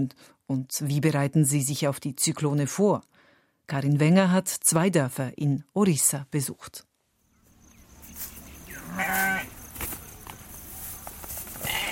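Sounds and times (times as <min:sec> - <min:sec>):
speech: 0:00.0 - 0:06.9
faint rustling: 0:07.5 - 0:11.9
shuffling steps: 0:07.5 - 0:11.9
sheep bleating between two brick huts in a village in Orissa: 0:08.7 - 0:09.6, 0:11.6 - 0:11.9.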